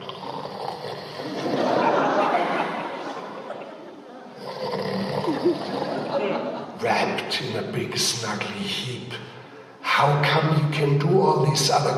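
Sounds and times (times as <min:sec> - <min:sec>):
lions and cubs snoring: 0:00.0 - 0:01.4, 0:04.4 - 0:06.1
laughter: 0:01.2 - 0:07.5
speech: 0:07.2 - 0:09.4, 0:10.0 - 0:11.9.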